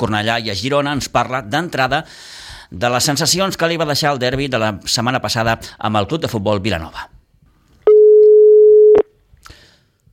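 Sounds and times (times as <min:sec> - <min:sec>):
speech: 0:00.0 - 0:07.2
steady telephone line tone: 0:07.9 - 0:09.1.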